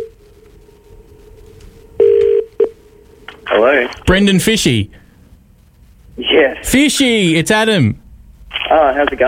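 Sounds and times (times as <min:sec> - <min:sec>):
faint steady telephone line tone: 0:00.0 - 0:00.2, 0:02.0 - 0:02.8
telephone ringback tone: 0:02.0 - 0:02.8
speech: 0:03.5 - 0:05.0, 0:06.2 - 0:08.0, 0:08.6 - 0:09.2.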